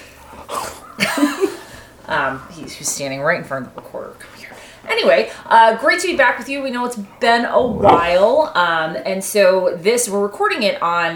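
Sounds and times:
speech: 0:02.1 - 0:11.1
heavy breathing close to the microphone: 0:07.6 - 0:08.3.

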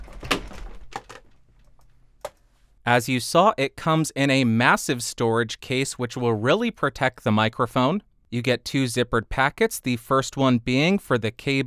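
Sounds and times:
cardboard box thrown down and landing: 0:00.0 - 0:01.3
cardboard box bumping and scuffing: 0:00.0 - 0:02.8
speech: 0:02.9 - 0:11.6.

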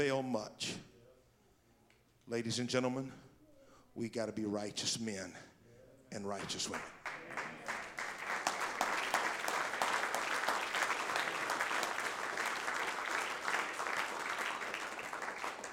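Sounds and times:
speech: 0:00.0 - 0:00.9, 0:02.3 - 0:03.3, 0:04.0 - 0:05.5, 0:06.1 - 0:07.4
congregation applauding: 0:06.3 - 0:15.7.

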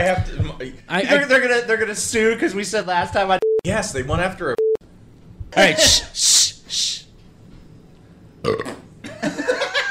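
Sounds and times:
speech: 0:00.0 - 0:04.6, 0:05.5 - 0:07.0, 0:08.4 - 0:09.6
person burping: 0:08.4 - 0:08.8
laughter: 0:09.0 - 0:09.8.

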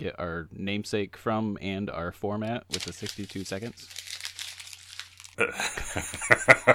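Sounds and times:
speech: 0:00.0 - 0:04.1, 0:05.4 - 0:06.7
paper notes being crumpled up: 0:02.7 - 0:05.4
laughter: 0:05.4 - 0:06.7.

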